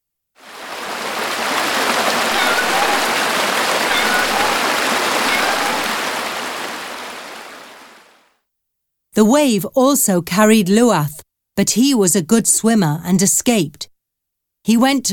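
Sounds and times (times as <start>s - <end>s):
rushing river water after dam collapse: 0.4s - 8.2s
speech: 9.2s - 13.9s, 14.6s - 15.1s.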